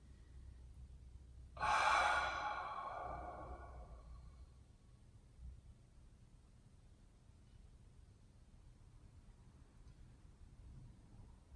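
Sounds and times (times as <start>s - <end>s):
deep inhale through nose and full exhale through mouth with ah: 1.6s - 4.5s.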